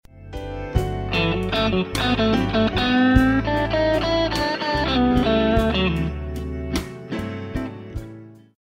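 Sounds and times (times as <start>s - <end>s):
blues guitar lick: 1.0s - 7.8s.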